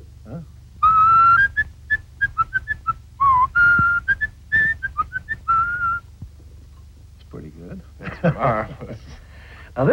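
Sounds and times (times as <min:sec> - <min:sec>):
animatronic robin whistling birdsong: 0:00.8 - 0:06.0.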